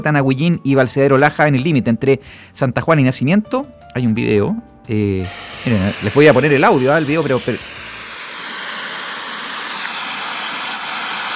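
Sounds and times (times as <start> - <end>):
speech: 0.0 - 7.8
overflowing river rushing water: 5.2 - 11.3.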